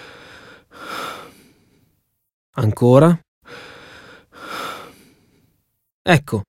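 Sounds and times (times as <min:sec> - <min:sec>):
patient taking deep breaths during stethoscope exam: 0:00.0 - 0:02.2, 0:03.4 - 0:05.8
speech: 0:02.6 - 0:03.7, 0:06.0 - 0:06.4.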